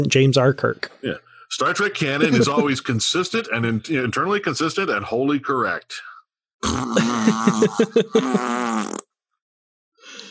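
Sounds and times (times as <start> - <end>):
speech: 0.0 - 8.7
laughter: 1.6 - 4.8, 6.9 - 8.5
fart noise blown with the mouth: 6.6 - 9.1.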